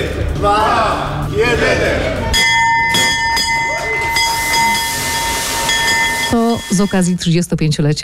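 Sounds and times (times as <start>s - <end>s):
speech: 0.4s - 2.4s, 6.3s - 8.0s
stock exchange opening bell ringing: 2.3s - 7.4s.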